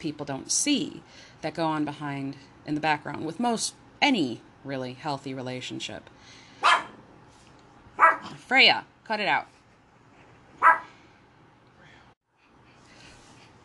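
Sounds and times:
speech: 0.0s - 6.8s, 8.5s - 9.6s
dog barking: 6.6s - 7.0s, 8.0s - 8.4s, 10.6s - 10.9s.

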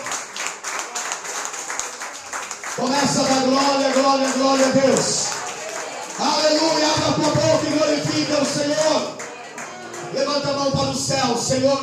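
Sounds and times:
audience applauding loudly: 0.0s - 11.8s
speech: 2.8s - 5.2s, 6.5s - 9.2s, 10.1s - 11.8s.

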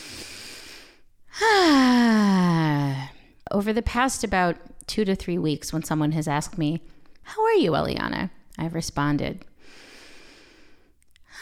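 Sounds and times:
person taking a big deep breath: 0.0s - 3.4s, 9.6s - 11.0s
speech: 3.6s - 9.8s.

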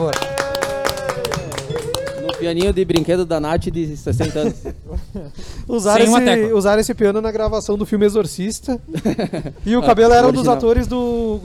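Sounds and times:
speech: 0.0s - 0.3s, 2.4s - 11.4s
people clapping: 0.0s - 3.4s
laughter: 1.0s - 2.6s, 4.1s - 5.4s, 8.9s - 10.1s.

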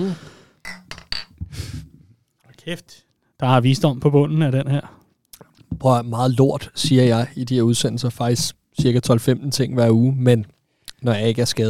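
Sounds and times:
speech: 0.0s - 0.3s, 2.6s - 5.0s, 5.7s - 11.6s
glasses clinking in a toast: 0.6s - 1.4s.

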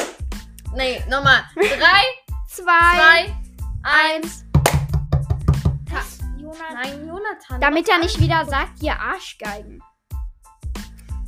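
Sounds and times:
small group clapping: 0.0s - 0.2s, 4.6s - 5.7s
speech: 0.8s - 4.4s, 5.9s - 9.9s
laughter: 1.6s - 2.0s.

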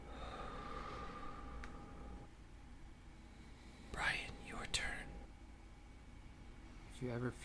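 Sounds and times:
slow breathing in and out through the nose during a guided breathing exercise: 0.0s - 2.3s, 3.0s - 4.5s
low steady hum: 0.0s - 7.4s
speech: 7.0s - 7.4s.

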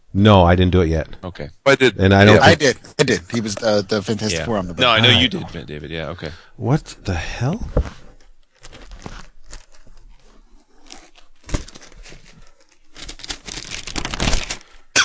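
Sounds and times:
speech: 0.2s - 8.0s
wrapping paper being torn open: 8.5s - 14.9s.

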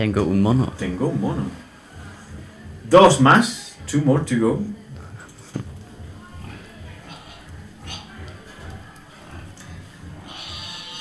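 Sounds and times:
speech: 0.0s - 1.7s, 2.9s - 4.8s
pig grunting and snorting: 6.4s - 11.0s.

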